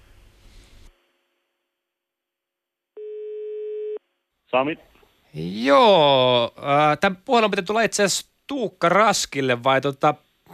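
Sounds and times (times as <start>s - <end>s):
telephone ringback tone with buzzy beeps: 3.0s - 4.0s
speech: 4.5s - 10.3s.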